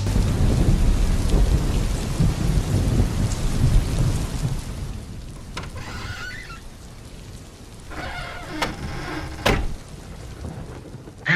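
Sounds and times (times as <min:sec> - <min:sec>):
heavy low rumble of thunder: 0:00.1 - 0:05.0
steady heavy rain pouring down: 0:00.1 - 0:05.9, 0:06.5 - 0:11.3.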